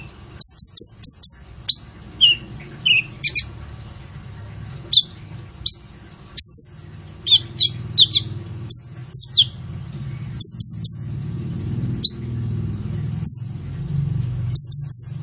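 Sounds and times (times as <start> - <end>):
sunbird piercing high chirps: 0.0 - 3.6, 4.9 - 11.1, 12.0 - 12.4, 13.2 - 13.6, 14.5 - 15.2
low background hum: 0.0 - 15.2.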